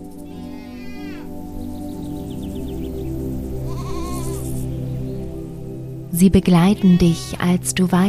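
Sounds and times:
goats bleating: 0.2s - 1.3s, 3.7s - 4.6s, 6.8s - 7.6s
speech: 6.2s - 8.0s.

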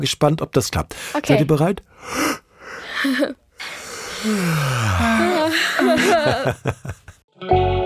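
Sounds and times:
speech: 0.0s - 2.4s, 3.0s - 3.4s, 4.2s - 7.7s
hearty breathy yawn with voiced groan: 2.1s - 6.4s
laughter: 4.8s - 7.2s.

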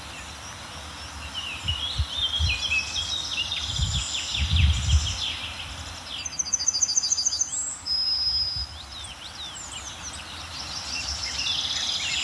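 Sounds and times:
Garden Warbler song: 1.1s - 12.2s.

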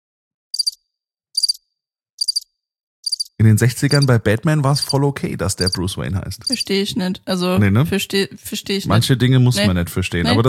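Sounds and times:
crickets chirping: 0.6s - 0.8s, 1.4s - 1.6s, 2.2s - 4.1s
speech: 3.4s - 10.4s.

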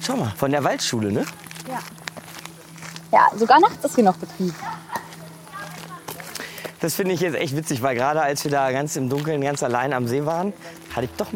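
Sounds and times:
speech: 0.0s - 2.0s, 3.1s - 4.9s, 6.8s - 11.3s
low steady hum: 0.1s - 8.2s
footsteps crunching along a path: 0.2s - 11.3s
children's voices chattering and calling out on a night hike in forest: 3.2s - 6.4s.

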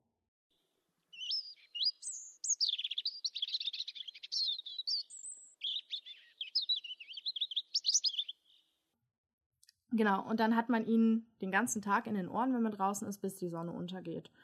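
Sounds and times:
European robin singing: 1.1s - 8.8s
speech: 10.0s - 14.4s.

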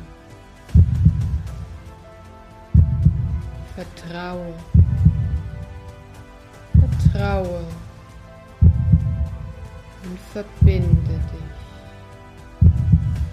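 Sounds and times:
deep booming heartbeat thuds: 0.8s - 1.7s, 2.7s - 3.7s, 4.7s - 5.8s, 6.8s - 7.7s, 8.6s - 9.8s, 10.6s - 11.6s, 12.6s - 13.3s
speech: 3.8s - 4.7s, 7.2s - 7.8s, 10.0s - 11.6s.

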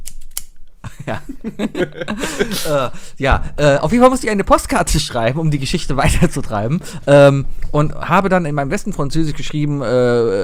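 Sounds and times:
scissors snipping: 0.0s - 0.5s
laughter: 0.9s - 3.1s
speech: 1.0s - 10.4s.

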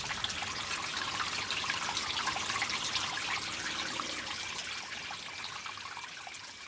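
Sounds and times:
spring water trickling, bubbling and splashing: 0.0s - 6.6s.

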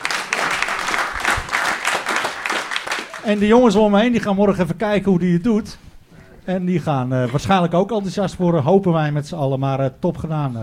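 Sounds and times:
crowd applauding: 0.0s - 3.7s
speech: 3.2s - 5.8s, 6.4s - 10.6s.

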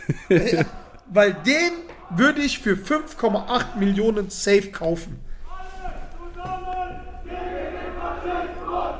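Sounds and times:
laughter: 0.0s - 1.4s
speech: 0.0s - 5.3s
steady noise: 0.0s - 8.9s
crowd of protesters chanting outside a door in Mainz, Germany: 0.5s - 3.9s, 5.5s - 8.9s.

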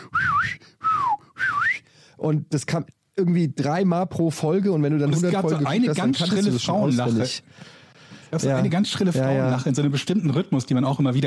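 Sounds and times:
person whistling short whistles imitating a sitcom laugh track: 0.0s - 1.9s
speech: 2.2s - 11.2s.

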